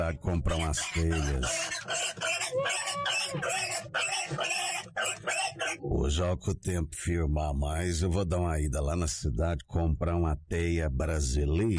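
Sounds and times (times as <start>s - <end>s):
speech: 0.0s - 11.7s
piglet squealing in a muddy pigsty: 0.5s - 5.9s.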